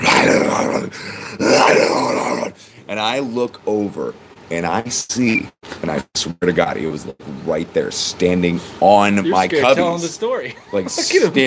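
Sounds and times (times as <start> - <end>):
person imitating a low rough animal growl with their voice: 0.0 - 2.6
speech: 2.9 - 11.4.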